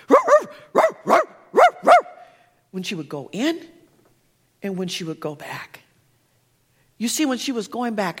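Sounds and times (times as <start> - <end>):
dog barking: 0.0 - 2.3
speech: 2.8 - 3.8, 4.6 - 5.8, 7.0 - 8.1.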